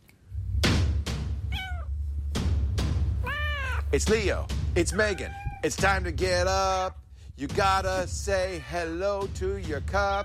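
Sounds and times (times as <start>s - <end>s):
low steady rumble: 0.2s - 10.2s
cat meowing: 1.4s - 2.0s, 3.2s - 3.9s, 4.9s - 5.7s
speech: 3.9s - 10.2s.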